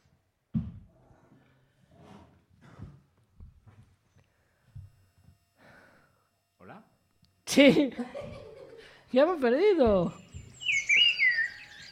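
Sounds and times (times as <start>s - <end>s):
laughter: 7.5s - 9.0s
speech: 7.6s - 8.3s, 9.1s - 10.2s
person whistling high sliding chirps and trills imitating a bird: 10.2s - 11.9s.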